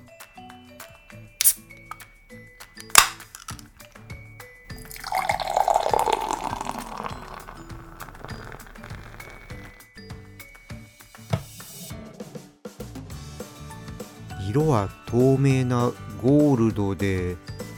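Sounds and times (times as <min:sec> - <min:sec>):
beer can cracked open: 0:01.4 - 0:02.0, 0:02.7 - 0:04.0, 0:04.8 - 0:09.8
beer fizzing in a glass: 0:04.7 - 0:09.8
beer pouring into a glass: 0:04.7 - 0:09.8
speech: 0:14.6 - 0:17.5.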